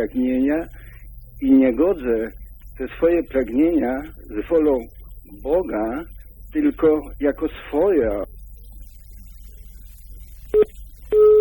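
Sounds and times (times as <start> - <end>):
speech: 0.0 - 0.8, 1.4 - 8.4
telephone line busy signal after a dropped call: 10.5 - 11.3.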